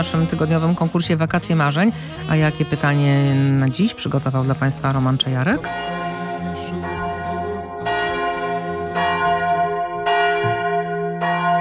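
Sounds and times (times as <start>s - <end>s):
speech: 0.0s - 6.0s
church bells ringing: 5.6s - 11.5s.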